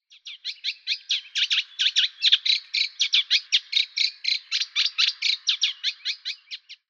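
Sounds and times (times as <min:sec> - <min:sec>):
Eurasian reed warbler Acrocephalus scirpaceus: 0:00.0 - 0:06.8.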